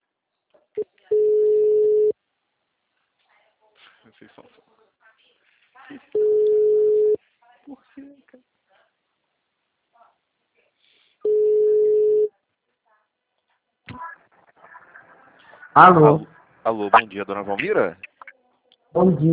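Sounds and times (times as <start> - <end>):
telephone busy tone beeps after a dropped call: 1.1 - 2.1, 6.2 - 7.2, 11.2 - 12.3
speech: 4.2 - 5.0, 5.9 - 6.6, 15.8 - 18.1, 18.9 - 19.3.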